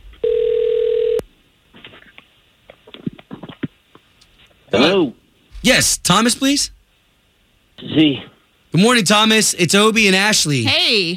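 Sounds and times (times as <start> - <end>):
cell phone ring tone: 0.2 - 1.2
speech: 4.8 - 6.8, 8.0 - 11.1.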